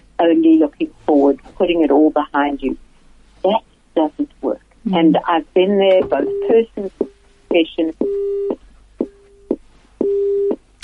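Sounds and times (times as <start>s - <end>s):
speech: 0.2s - 2.8s, 3.4s - 8.3s
phone line busy signal: 6.0s - 7.1s, 8.0s - 8.6s, 9.4s - 10.6s.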